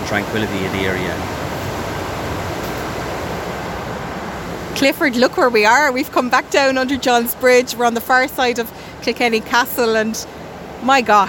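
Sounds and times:
river water flowing and rippling: 0.0s - 11.2s
speech: 0.1s - 1.4s, 4.8s - 11.2s.

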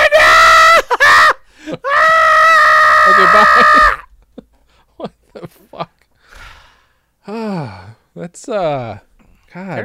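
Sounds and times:
person screaming loudly in high-pitched shrieks: 0.0s - 4.1s
speech: 8.2s - 9.8s.

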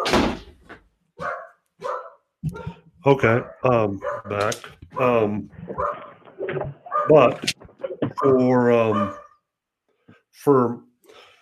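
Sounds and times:
dog barking: 1.2s - 4.4s, 5.8s - 6.1s, 6.8s - 7.4s, 8.2s - 9.4s
speech: 2.4s - 7.6s, 8.2s - 9.2s, 10.4s - 10.9s.

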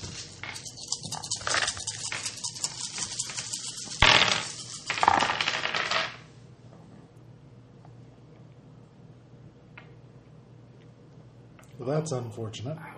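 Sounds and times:
dice clattering across a tabletop: 0.0s - 6.3s
speech: 12.0s - 12.9s.

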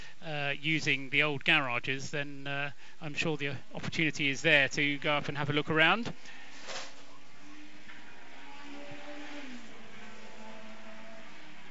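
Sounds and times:
speech: 0.6s - 6.4s
race car engines droning on a track: 3.4s - 11.6s
race car passing on a track: 6.1s - 11.6s.

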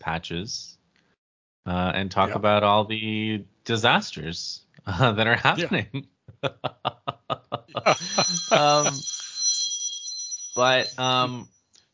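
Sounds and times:
speech: 0.1s - 0.8s, 1.6s - 7.1s, 7.7s - 9.2s, 10.6s - 11.6s
people talking and laughing: 5.1s - 9.4s
phone ringing with an incoming call: 7.7s - 11.4s.

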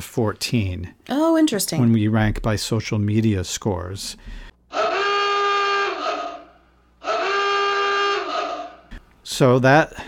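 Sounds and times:
speech: 0.0s - 4.8s, 9.3s - 10.0s
loud buzzy horn-like alert alarm blasts: 4.7s - 9.0s.

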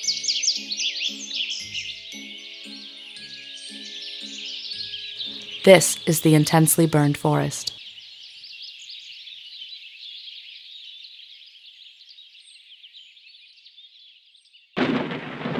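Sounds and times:
steady high chorus of insects or birds: 0.0s - 5.6s, 7.8s - 14.7s
speech: 5.6s - 7.7s
thunder crack from a lightning strike deep in a forest: 14.8s - 15.5s.

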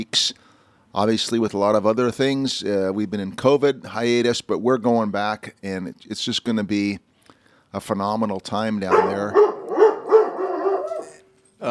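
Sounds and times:
speech: 0.0s - 7.1s, 7.7s - 9.4s
dog barking and yipping with high-pitched calls and a whine: 8.9s - 11.2s.

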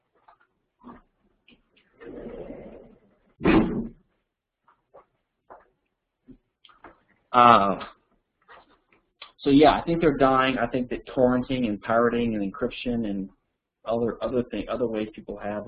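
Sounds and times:
door being pulled shut: 3.4s - 4.0s
speech: 7.4s - 8.0s, 9.4s - 15.6s.

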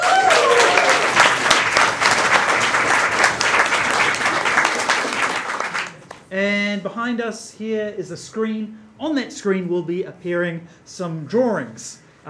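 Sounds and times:
audience applause in a room for the technical crew: 0.0s - 6.2s
speech: 6.8s - 12.2s.

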